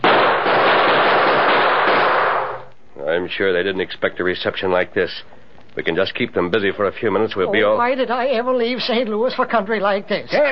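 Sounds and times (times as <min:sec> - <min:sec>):
dense exchange of gunfire: 0:00.0 - 0:02.7
speech: 0:03.2 - 0:10.5.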